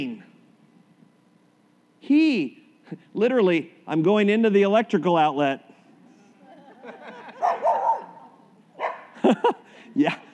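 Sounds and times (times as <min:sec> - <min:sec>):
speech: 0:02.1 - 0:05.7, 0:09.4 - 0:10.3
laughter: 0:06.0 - 0:10.3
dog barking: 0:07.4 - 0:09.2.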